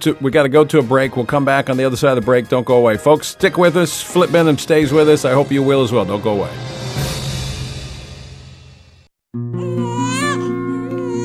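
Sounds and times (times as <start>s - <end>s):
speech: 0.0s - 6.8s
newborn baby crying: 9.6s - 11.2s.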